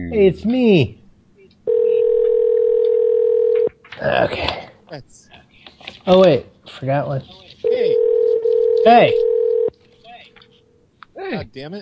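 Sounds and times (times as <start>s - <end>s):
speech: 0.0s - 1.0s, 4.0s - 8.0s, 8.8s - 9.3s, 11.3s - 11.7s
steady single-pitch phone call tone: 1.7s - 3.7s, 7.6s - 9.7s.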